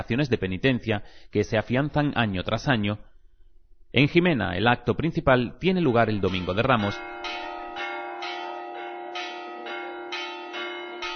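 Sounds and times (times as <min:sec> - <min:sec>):
speech: 0:00.0 - 0:03.1, 0:03.9 - 0:07.4
church bells pealing for a Palm Sunday procession: 0:06.0 - 0:11.1.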